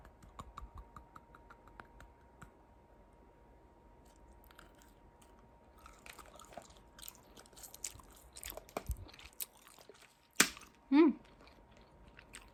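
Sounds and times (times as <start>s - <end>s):
crunching and chewing on ice cubes from a container: 4.4s - 12.5s
loud snap: 10.4s - 10.6s.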